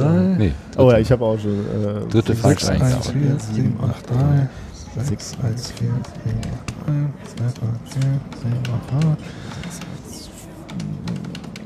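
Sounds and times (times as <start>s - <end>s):
speech: 0.4s - 9.8s
low murmur of voices: 1.5s - 11.6s
fast keyboard typing: 3.3s - 11.6s.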